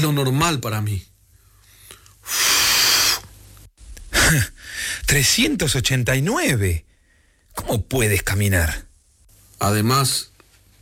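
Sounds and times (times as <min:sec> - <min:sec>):
speech: 0:00.0 - 0:01.1, 0:02.3 - 0:02.5, 0:04.3 - 0:06.9, 0:07.6 - 0:08.9, 0:09.6 - 0:10.3
person blowing into a breathalyzer during a police check: 0:02.2 - 0:03.4.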